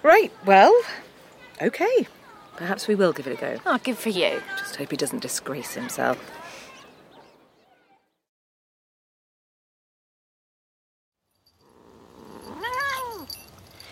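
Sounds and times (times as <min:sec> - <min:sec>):
speech: 0:00.1 - 0:01.0, 0:01.6 - 0:06.5
cat yowling and caterwauling: 0:11.9 - 0:13.3.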